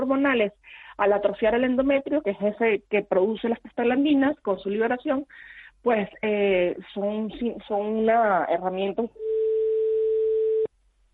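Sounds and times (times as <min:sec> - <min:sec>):
speech: 0:00.1 - 0:09.5
steady mid-pitched tone of another phone call cutting into a telephone line: 0:09.2 - 0:10.7.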